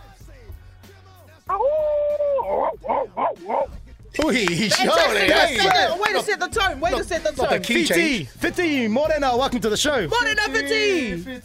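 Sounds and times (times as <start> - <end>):
person imitating a dog howl: 1.5 - 3.7
laughter: 1.9 - 6.4
speech: 3.4 - 11.4.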